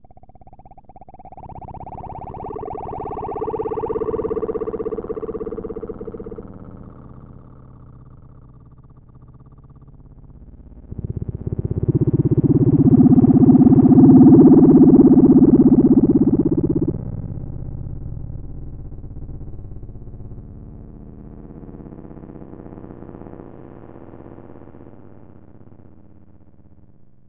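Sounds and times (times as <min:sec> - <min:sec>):
theremin: 0:01.2 - 0:07.6, 0:10.9 - 0:18.0.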